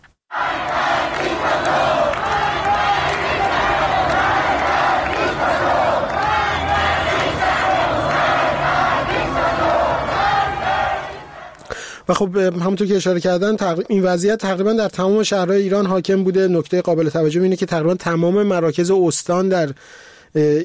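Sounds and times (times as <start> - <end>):
large crowd of protesters shouting and chanting while moving through streets: 0.3 - 11.6
speech: 12.1 - 20.6.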